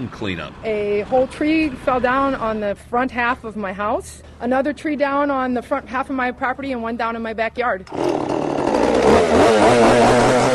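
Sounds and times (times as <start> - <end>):
speech: 0.0 - 8.3, 9.4 - 10.5
chainsaw engine revving during cleanup of fallen trees in blistering sun: 7.9 - 10.5.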